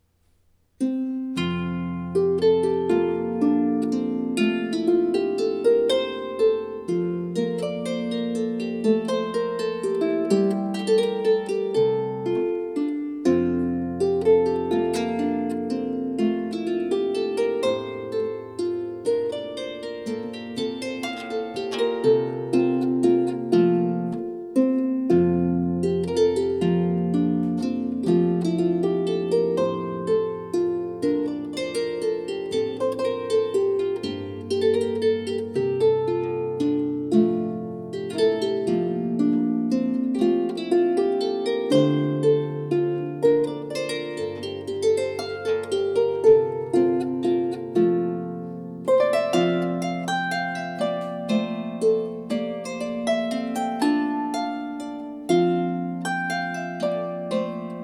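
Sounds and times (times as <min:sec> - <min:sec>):
solo harp: 0:00.0 - 0:57.8.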